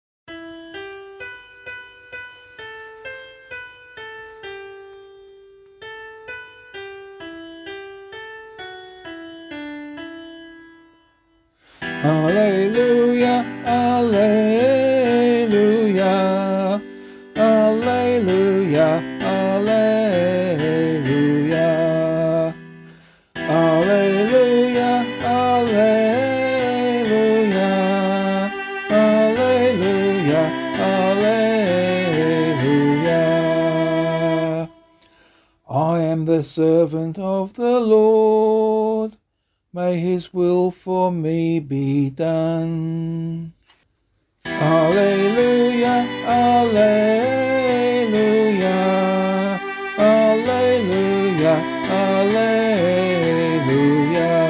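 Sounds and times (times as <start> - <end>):
person singing a gospel acclamation for Catholic liturgy: 11.8 - 39.2, 39.8 - 43.6, 44.4 - 54.4.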